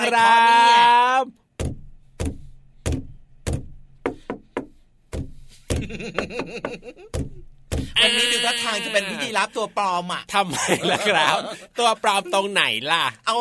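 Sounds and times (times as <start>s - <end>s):
speech: 0.1s - 1.4s, 5.9s - 7.4s, 8.0s - 13.3s
rhythmic knocking played like a tune: 1.6s - 8.0s
laughter: 5.8s - 7.1s, 8.0s - 9.8s, 10.4s - 11.8s.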